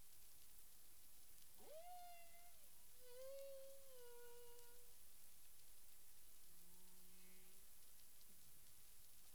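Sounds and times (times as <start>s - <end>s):
constant hiss: 0.0s - 9.3s
humpback whale moans in Caribbean waters: 1.6s - 4.9s.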